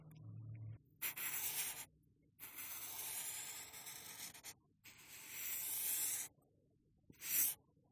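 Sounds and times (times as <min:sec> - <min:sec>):
highlighter tip highlighting and circling on paper: 0:01.0 - 0:06.4, 0:07.1 - 0:07.6.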